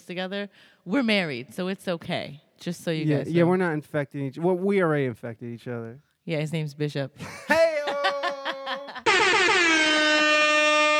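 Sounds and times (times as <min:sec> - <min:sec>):
speech: 0:00.1 - 0:07.7
laughter: 0:07.2 - 0:09.1
loud brassy air horn honks and blast: 0:09.1 - 0:10.9.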